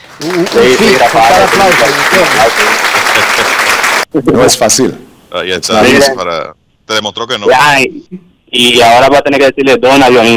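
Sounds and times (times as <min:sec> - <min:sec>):
audience applause: 0:00.0 - 0:04.1
laughter: 0:00.2 - 0:03.8
speech: 0:00.2 - 0:10.3.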